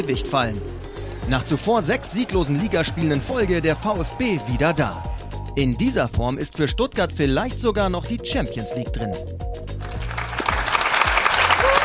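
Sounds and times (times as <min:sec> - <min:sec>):
speech: 0:00.0 - 0:09.5
spectators applauding at a Stuttgart football match: 0:01.3 - 0:05.1, 0:09.8 - 0:11.8.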